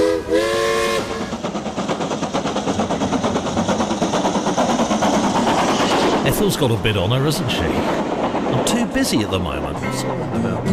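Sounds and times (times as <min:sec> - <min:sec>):
Isle of Man Railways steam train whistle on the Isle of Man: 0:00.0 - 0:01.4
Isle of Man Railways steam locomotive chuffing as it pulls away: 0:00.0 - 0:10.7
speech: 0:06.4 - 0:08.1, 0:08.7 - 0:10.7.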